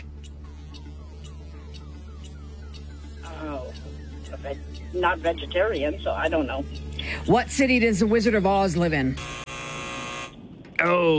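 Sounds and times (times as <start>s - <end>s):
quiz-show buzzer: 0.1s - 6.1s, 9.0s - 10.4s
speech: 4.3s - 9.4s, 10.8s - 11.1s.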